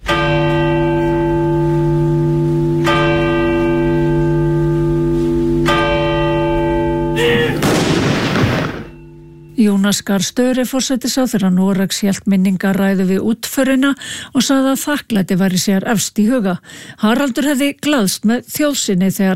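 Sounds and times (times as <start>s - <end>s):
church bells tolling at a funeral in Oslo: 0.0s - 9.9s
deep booming cannon shot at a funeral: 7.6s - 9.0s
speech: 9.9s - 19.3s.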